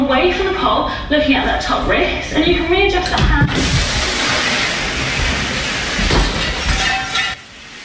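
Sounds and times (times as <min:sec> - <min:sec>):
speech: 0:00.3 - 0:04.5
fire sprinkler spraying water in a loud hissing rush, flooding room: 0:03.6 - 0:07.8.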